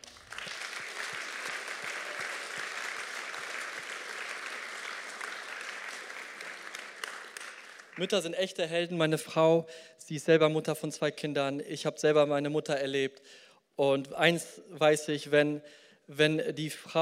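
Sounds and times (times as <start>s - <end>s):
crowd applauding: 0.0s - 8.3s
speech: 8.0s - 17.0s.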